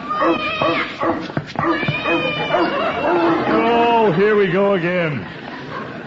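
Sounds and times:
cat yowling and caterwauling: 0.0s - 3.6s
harsh dog-like barking bursts during a scuffle: 0.0s - 3.6s
speech: 0.2s - 5.4s.

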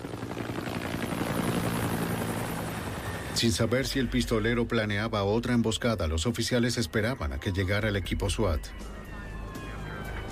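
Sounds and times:
helicopter rotor waiting to carry a wounded man to hospital: 0.0s - 4.4s, 8.7s - 10.3s
speech: 3.4s - 9.0s.

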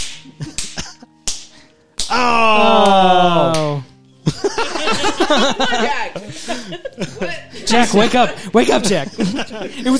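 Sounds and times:
two people slapping each other: 0.0s - 3.8s
laughter: 4.2s - 9.9s
speech: 5.3s - 9.9s.

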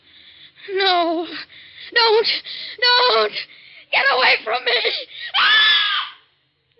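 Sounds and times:
speech: 0.7s - 5.6s
woman screaming in panic from a nightmare: 5.4s - 6.2s.

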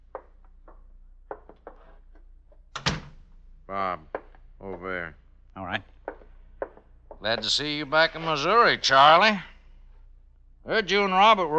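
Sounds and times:
soft knocks and thumps: 0.1s - 2.6s, 5.9s - 7.6s
door opening: 2.7s - 3.2s
speech: 3.7s - 5.9s, 7.2s - 9.5s, 10.6s - 11.5s.

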